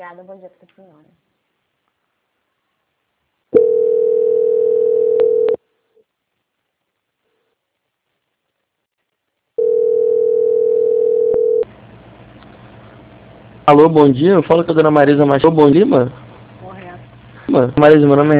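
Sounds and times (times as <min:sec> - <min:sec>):
speech: 0:00.0 - 0:01.3, 0:13.7 - 0:16.2, 0:17.5 - 0:18.3
telephone line tones while a call is transferred: 0:03.6 - 0:05.6, 0:09.6 - 0:11.6.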